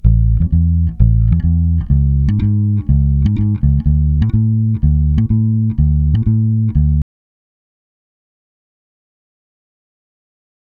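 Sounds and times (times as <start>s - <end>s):
bass line in A: 0.0s - 7.0s.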